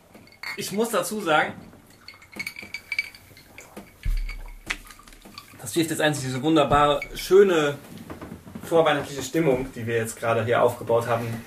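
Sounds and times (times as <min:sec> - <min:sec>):
glasses clinking in a toast: 0:00.0 - 0:07.8
speech: 0:00.6 - 0:01.7, 0:05.7 - 0:08.0, 0:08.7 - 0:11.4.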